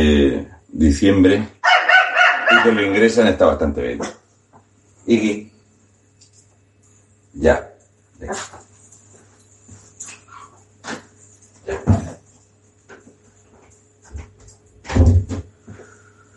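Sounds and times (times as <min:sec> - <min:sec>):
speech: 0:00.0 - 0:01.6, 0:02.5 - 0:04.2, 0:05.0 - 0:05.5, 0:07.4 - 0:08.7
small female dog barking: 0:01.6 - 0:02.8.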